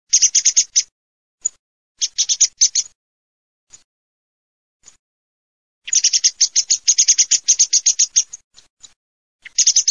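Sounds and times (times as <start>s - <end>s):
birds squawking: 0.1s - 0.9s, 2.0s - 2.9s, 5.9s - 8.4s, 9.4s - 9.9s.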